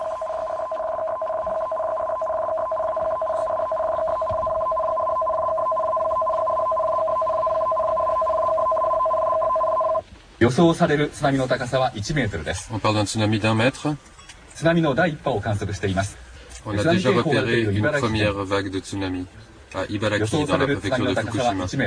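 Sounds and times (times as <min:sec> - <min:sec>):
two-pitched electronic tsunami alert tone on radio: 0:00.0 - 0:10.0
speech: 0:10.5 - 0:21.8.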